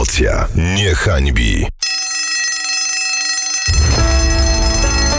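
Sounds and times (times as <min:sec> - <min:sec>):
speech: 0:00.2 - 0:01.8
bell ringing with a bright metallic tone: 0:01.8 - 0:05.1.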